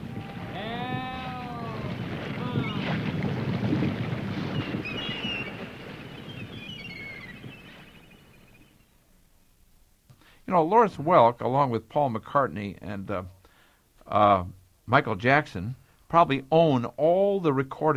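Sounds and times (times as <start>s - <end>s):
waterfall rushing water: 0.0s - 3.6s
wavering vocal cry: 0.4s - 2.9s
faint high whistling tones: 2.4s - 3.0s, 4.5s - 9.6s
speech: 10.5s - 13.4s, 14.1s - 17.9s.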